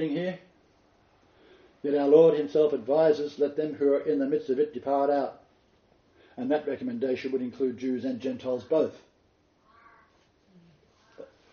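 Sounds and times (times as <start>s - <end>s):
speech: 0.0s - 0.5s, 1.8s - 5.4s, 6.4s - 9.1s
faint hum: 0.0s - 11.5s
crow cawing outdoors: 9.6s - 10.2s.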